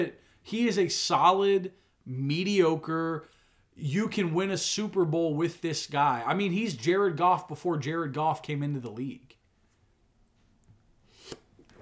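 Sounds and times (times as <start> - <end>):
speech: 0.0 - 9.4
person sneezing: 11.1 - 11.8.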